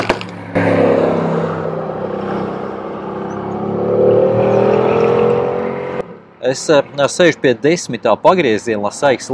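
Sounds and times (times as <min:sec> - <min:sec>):
safety car engine passing on the race circuit at Barcelona near turn 10: 0:00.2 - 0:06.2
speech: 0:06.5 - 0:09.3.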